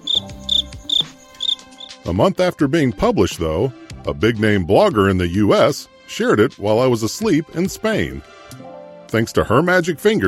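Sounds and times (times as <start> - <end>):
crickets chirping: 0.0 - 2.0
speech: 2.0 - 10.2.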